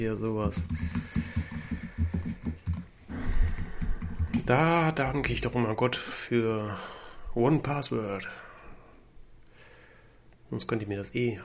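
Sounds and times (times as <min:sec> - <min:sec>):
speech: 0:00.0 - 0:01.2, 0:04.5 - 0:08.5, 0:10.5 - 0:11.4
typing on a computer keyboard: 0:00.4 - 0:04.6.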